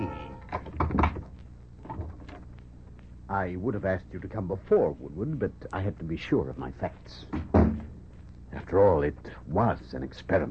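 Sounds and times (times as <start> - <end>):
door knocks and creaks: 0.0 - 2.4, 7.3 - 7.9
speech: 3.3 - 7.8, 8.7 - 10.4.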